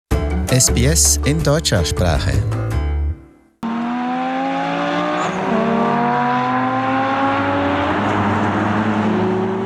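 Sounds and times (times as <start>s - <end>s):
speech: 0.5s - 2.7s
Formula One race car engines roaring at Spa-Francorchamps: 3.6s - 9.6s.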